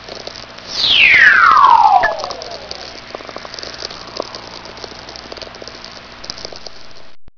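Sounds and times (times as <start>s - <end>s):
VLF radio whistler: 0.7s - 3.4s.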